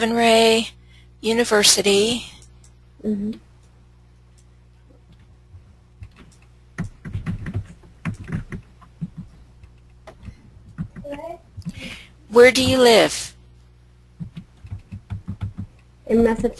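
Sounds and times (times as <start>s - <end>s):
speech: 0.0s - 2.4s, 3.0s - 3.5s, 12.3s - 13.3s, 16.1s - 16.5s
low steady hum: 0.0s - 16.5s
typing on a computer keyboard: 6.0s - 11.2s, 14.2s - 15.8s.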